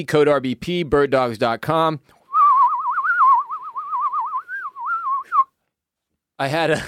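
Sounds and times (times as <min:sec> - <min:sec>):
speech: 0:00.0 - 0:02.2, 0:06.4 - 0:06.8
whistling toy football: 0:02.3 - 0:05.6.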